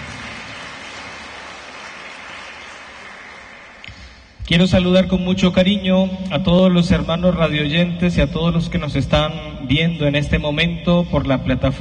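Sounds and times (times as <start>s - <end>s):
crowd clapping in sustained applause: 0.0s - 4.2s
speech: 4.5s - 11.8s.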